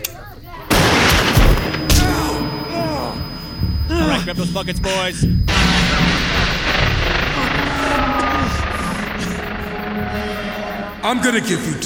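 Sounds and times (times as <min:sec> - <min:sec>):
gunshots in a tense armed standoff: 0:00.7 - 0:03.6, 0:05.5 - 0:11.2
speech: 0:04.2 - 0:06.4, 0:11.0 - 0:11.8.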